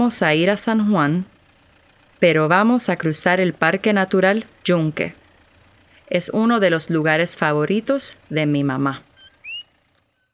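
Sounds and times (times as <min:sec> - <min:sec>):
speech: 0:00.0 - 0:01.4, 0:02.2 - 0:05.2, 0:06.1 - 0:09.1
coquí frog giving a short rising whistled chirp: 0:09.1 - 0:10.3.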